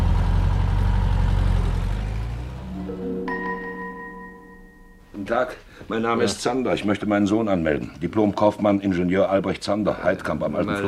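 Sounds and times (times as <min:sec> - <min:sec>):
car engine rumbling as the car pulls away: 0:00.0 - 0:03.0
speech: 0:05.3 - 0:10.8.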